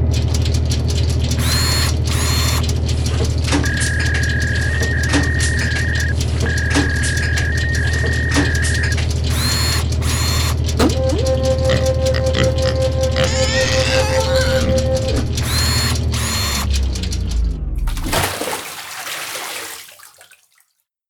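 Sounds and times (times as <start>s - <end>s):
random number generator mechanical contraption whirring: 0.1s - 18.0s
output splashing into a bucket of water: 17.8s - 20.8s.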